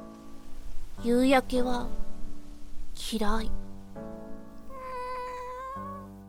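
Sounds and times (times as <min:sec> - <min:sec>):
speech: 0:01.0 - 0:02.0, 0:03.0 - 0:03.6
cat meowing: 0:04.7 - 0:06.2.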